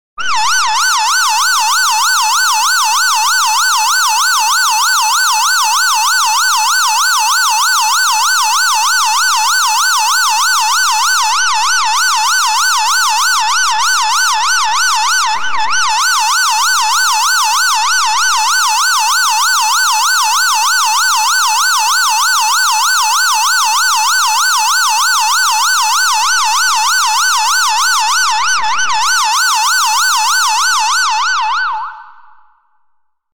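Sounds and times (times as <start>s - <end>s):
high-pitched siren sound effect: 0.2s - 32.7s.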